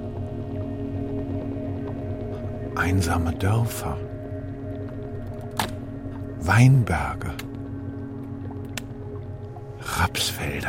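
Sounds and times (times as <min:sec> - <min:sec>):
steady low drone: 0:00.0 - 0:10.6
water dripping from a cave ceiling lined with dripstone: 0:00.0 - 0:10.6
speech: 0:02.8 - 0:04.2, 0:06.4 - 0:07.5, 0:10.0 - 0:10.6.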